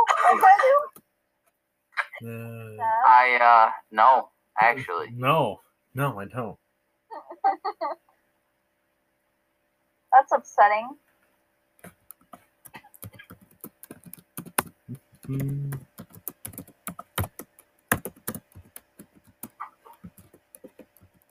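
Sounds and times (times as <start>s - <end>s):
speech: 0.3s - 1.0s, 2.2s - 8.1s, 10.1s - 11.0s, 15.3s - 15.8s
typing on a computer keyboard: 11.9s - 21.2s.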